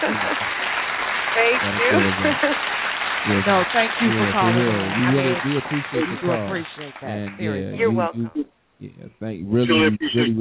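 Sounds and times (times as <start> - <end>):
laughter: 0.0 - 0.7, 1.4 - 2.7, 3.3 - 10.3
crowd applause: 0.0 - 8.3, 9.5 - 10.3
speech: 1.5 - 10.3.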